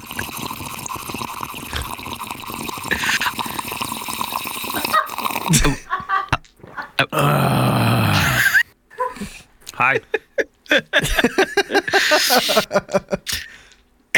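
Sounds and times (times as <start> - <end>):
watery trickling: 0.0 - 5.5
laughter: 4.8 - 7.1, 8.2 - 13.4
speech: 5.5 - 5.9, 7.0 - 7.6, 12.4 - 13.2
person growling and whimpering like a dog as Foley: 7.1 - 8.6.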